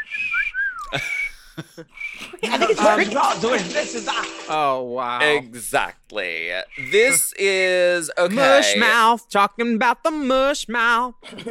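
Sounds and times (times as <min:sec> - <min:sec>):
person whistling a short wavering tune: 0:00.0 - 0:02.4, 0:06.7 - 0:07.2
speech: 0:00.9 - 0:01.1, 0:02.5 - 0:11.4
laughter: 0:00.9 - 0:04.5, 0:11.2 - 0:11.4.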